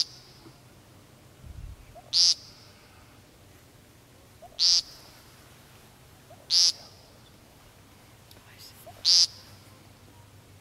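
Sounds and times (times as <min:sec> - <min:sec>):
background hiss: 0:00.0 - 0:10.5
woodcock giving a sharp high call: 0:01.9 - 0:02.8, 0:04.4 - 0:05.1, 0:06.3 - 0:07.2, 0:08.8 - 0:09.6.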